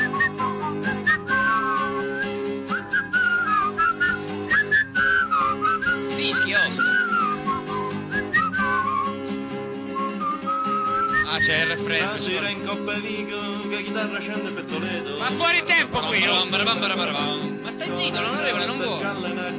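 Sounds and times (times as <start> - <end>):
person whistling a melody: 0.0 - 9.2, 9.9 - 11.9
musical backing: 0.0 - 19.5
speech: 11.4 - 19.5.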